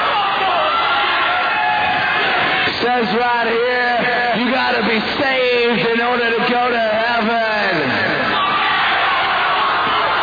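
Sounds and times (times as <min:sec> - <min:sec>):
large concert crowd screaming and cheering: 0:00.0 - 0:05.5, 0:07.7 - 0:10.2
speech: 0:02.8 - 0:08.1.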